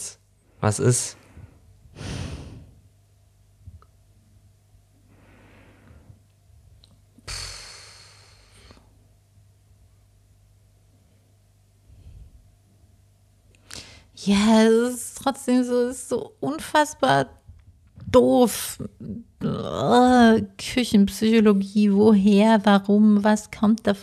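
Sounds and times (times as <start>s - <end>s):
speech: 0.6s - 1.2s, 14.3s - 17.4s, 18.1s - 24.0s
heavy snorting breaths: 1.2s - 2.8s.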